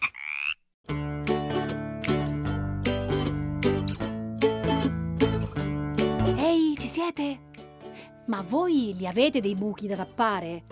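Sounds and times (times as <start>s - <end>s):
frog croaking: 0.0s - 0.7s
bouncy plucked instrumental melody: 0.9s - 10.7s
speech: 7.0s - 7.5s, 8.3s - 10.7s.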